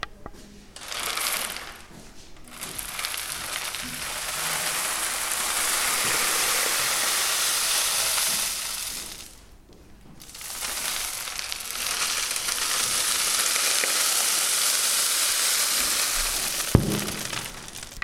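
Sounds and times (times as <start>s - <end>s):
rainstick: 0.8s - 9.5s, 10.2s - 18.0s.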